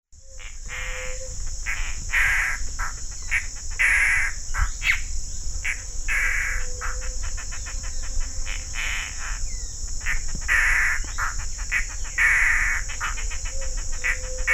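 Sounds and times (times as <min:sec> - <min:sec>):
high insect drone: 0:00.2 - 0:14.5
Mato Grosso antbird song of harsh buzzy bursts in Mato Grosso, Brazil: 0:00.3 - 0:14.5.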